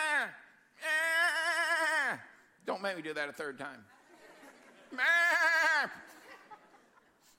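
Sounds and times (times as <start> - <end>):
person imitating a sheep bleating: 0.0 - 2.3, 5.0 - 6.0
speech: 2.8 - 4.0, 4.9 - 6.2
laughter: 4.0 - 7.3.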